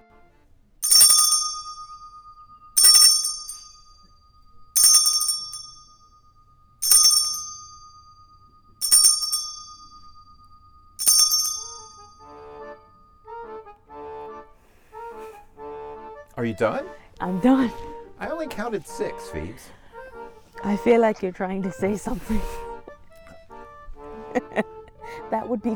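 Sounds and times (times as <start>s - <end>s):
bright metallic chime bell struck by a player in a game: 0.8s - 13.6s
speech: 16.4s - 19.8s, 20.6s - 22.6s, 25.3s - 25.7s.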